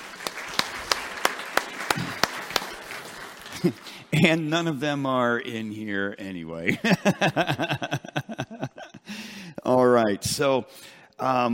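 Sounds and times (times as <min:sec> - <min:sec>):
single person clapping: 0:00.0 - 0:03.8
audience applauding: 0:00.0 - 0:04.8
laughter: 0:03.4 - 0:04.5, 0:06.6 - 0:09.2
speech: 0:03.6 - 0:08.0, 0:10.1 - 0:11.5.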